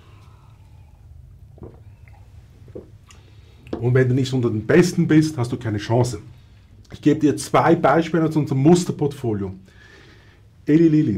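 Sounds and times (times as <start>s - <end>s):
low steady hum: 0.0s - 11.1s
person drinking water with soft wet gulps: 0.8s - 3.8s
speech: 3.8s - 9.8s, 10.7s - 11.1s.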